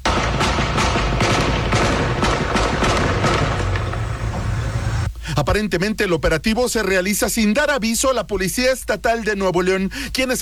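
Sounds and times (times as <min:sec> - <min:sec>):
gunshots during an armed confrontation: 0:00.0 - 0:05.1
constant rumbling background: 0:00.0 - 0:05.6
speech: 0:05.4 - 0:10.4.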